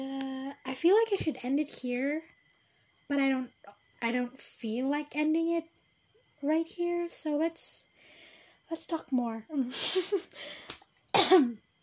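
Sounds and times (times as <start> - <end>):
speech: 0.8 - 2.4, 3.1 - 5.8, 6.4 - 7.9, 8.7 - 11.6
person coughing: 11.1 - 11.6.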